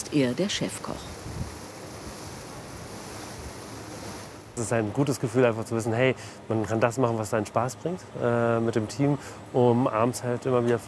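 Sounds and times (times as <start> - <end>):
waves on a ferry crossing the Kiel fjord: 0.0 - 4.6
wind on a ferry crossing the Kiel fjord: 0.0 - 10.8
speech: 0.1 - 1.2, 4.6 - 10.8.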